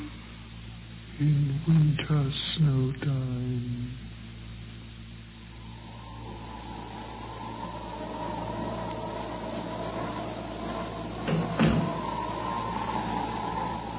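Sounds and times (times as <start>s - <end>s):
steady low hum: 0.0s - 13.9s
speech: 1.2s - 4.1s
door shutting with soft knocks: 11.0s - 12.5s.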